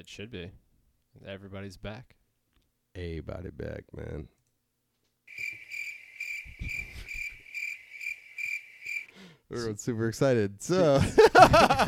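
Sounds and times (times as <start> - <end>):
speech: 0.0 - 0.6, 1.2 - 2.2, 3.0 - 4.4, 9.5 - 11.8
crickets chirping: 5.3 - 9.2
laughter: 10.8 - 11.8.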